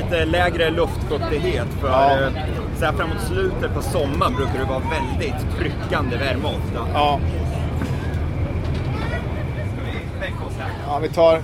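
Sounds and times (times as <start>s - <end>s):
ferry boat engine rumbling: 0.0s - 11.4s
murmur of many passengers talking while boarding a ferry: 0.0s - 11.4s
vehicle hum: 0.0s - 11.4s
speech: 0.1s - 7.5s, 10.9s - 11.4s.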